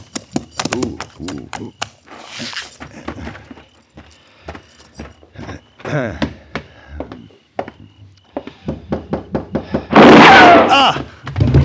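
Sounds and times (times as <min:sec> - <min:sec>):
horse hooves clip-clopping: 0:00.0 - 0:09.5
people talking: 0:00.7 - 0:02.5, 0:05.5 - 0:06.3
single loud sharp gunshot: 0:09.9 - 0:10.8.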